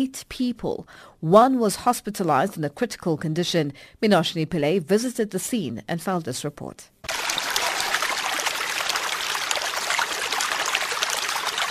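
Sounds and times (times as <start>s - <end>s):
speech: 0.0s - 7.0s
water running down the driveway of a small family outbuilding in Malvern: 7.1s - 11.6s.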